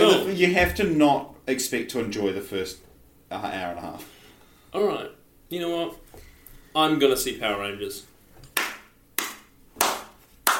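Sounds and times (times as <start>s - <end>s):
speech: 0.3s - 6.0s, 6.8s - 8.1s
slow hand claps: 8.5s - 10.5s.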